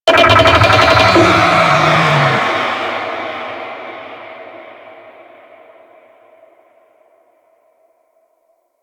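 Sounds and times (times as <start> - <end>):
infested golem vocal attack growl: 0.1 - 4.1.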